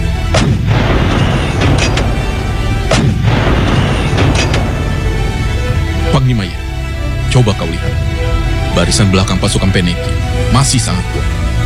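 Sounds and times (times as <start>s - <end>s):
constant heavy low rumble of battle: 0.0s - 7.3s
cannon shots booming: 0.3s - 6.0s
speech: 7.3s - 7.9s, 8.8s - 11.3s.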